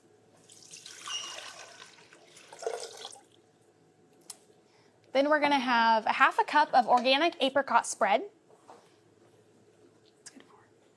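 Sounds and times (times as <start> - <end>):
water pouring into a container for an apricot ginger sauce: 0.4 - 3.4
speech: 5.2 - 8.4.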